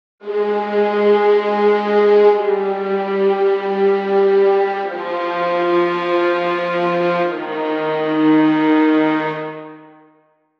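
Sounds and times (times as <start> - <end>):
musical leitmotif: 0.2 - 10.2.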